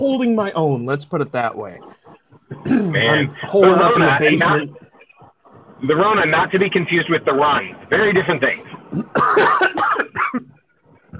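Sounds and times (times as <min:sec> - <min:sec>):
speech: 0:00.0 - 0:02.0, 0:02.6 - 0:04.8, 0:05.8 - 0:10.5
dry cough in quick harsh bursts: 0:02.5 - 0:03.2, 0:08.9 - 0:11.1.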